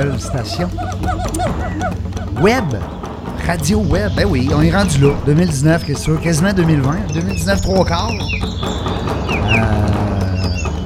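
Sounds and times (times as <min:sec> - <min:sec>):
fowl clucking: 0:00.0 - 0:03.4
laughter: 0:00.0 - 0:07.9, 0:09.4 - 0:10.8
speech: 0:00.0 - 0:08.8
chorus of birds chirping: 0:00.0 - 0:10.8.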